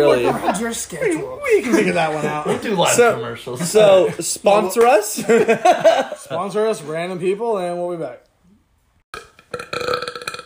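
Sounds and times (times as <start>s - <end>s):
laughter: 0.0s - 4.4s, 5.1s - 6.4s
speech: 0.0s - 8.2s
loud drawn-out burp: 9.1s - 10.4s.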